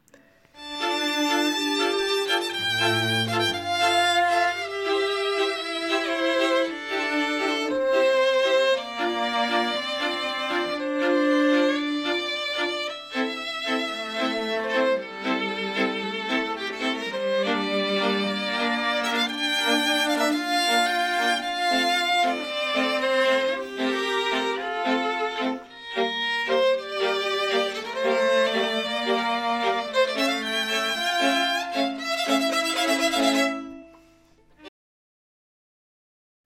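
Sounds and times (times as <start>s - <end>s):
string quartet playing a bright brisk variation: 0.6s - 34.6s.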